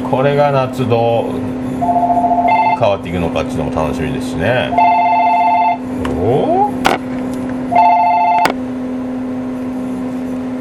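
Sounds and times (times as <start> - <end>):
speech: 0.1 - 2.2, 2.8 - 4.9, 6.2 - 7.1
constant hum: 0.8 - 10.6
shop landline telephone ringing with electronic tone: 1.8 - 2.9, 4.7 - 5.8, 7.7 - 8.6.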